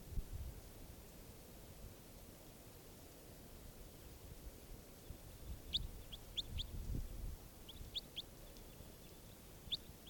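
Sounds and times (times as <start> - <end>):
low rumble of noise: 0.0 - 10.0
bird chirping rapidly: 5.5 - 6.8, 7.7 - 8.3.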